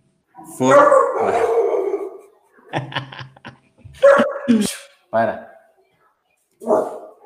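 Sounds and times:
speech: 0.5s - 1.6s, 2.7s - 3.3s, 4.5s - 5.4s
dog barking and howling: 0.6s - 2.3s, 4.0s - 4.5s, 6.6s - 7.2s
laughter: 2.6s - 4.0s.

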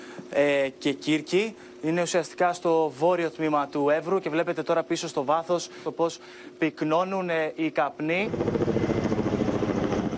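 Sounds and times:
speech: 0.3s - 8.8s
firefighting propeller aircraft engines droning at an airport: 8.2s - 10.1s.

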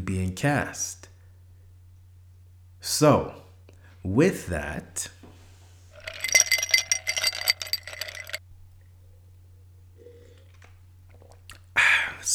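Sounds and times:
speech: 0.1s - 1.1s, 2.8s - 3.4s, 4.0s - 5.2s
glass clinking and rattling: 6.0s - 8.4s.

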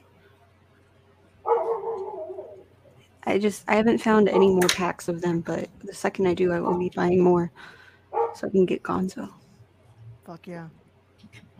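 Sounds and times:
dog barking: 1.5s - 2.6s, 6.6s - 6.9s, 8.2s - 8.4s
speech: 3.2s - 7.8s, 8.4s - 9.4s, 10.3s - 11.5s.

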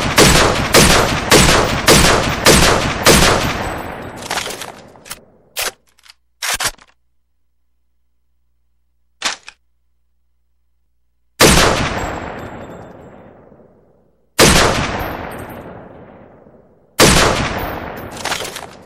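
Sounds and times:
WA 2000 rifle shot: 0.0s - 5.7s, 11.4s - 13.0s, 14.4s - 18.8s.

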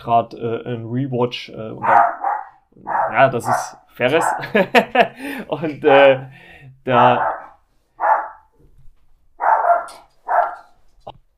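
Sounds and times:
speech: 0.0s - 2.2s, 2.8s - 7.4s
dog barking: 1.8s - 4.6s, 7.1s - 8.5s, 9.4s - 10.7s
laughter: 4.2s - 5.5s.

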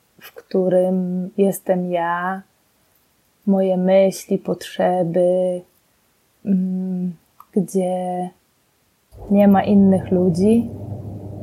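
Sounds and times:
speech: 0.5s - 2.5s, 3.4s - 5.7s, 6.4s - 8.4s, 9.2s - 10.8s
washing machine rumbling in a bathroom: 9.2s - 11.4s.

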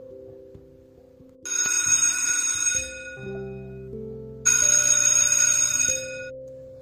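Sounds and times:
simple low chiming melody: 0.0s - 6.8s
school bell ringing: 1.5s - 3.2s, 4.5s - 6.3s.

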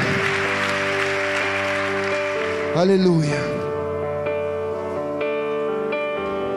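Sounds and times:
church audience applauding loudly: 0.0s - 3.5s
sustained keyboard chords: 0.0s - 6.5s
speech: 2.8s - 3.7s.

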